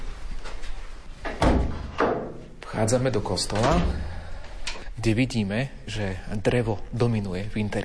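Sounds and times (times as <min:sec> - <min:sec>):
church door being opened: 0:01.2 - 0:04.2
heavy church door thud: 0:01.3 - 0:02.6, 0:03.4 - 0:04.2
speech: 0:02.8 - 0:04.2, 0:05.0 - 0:07.8.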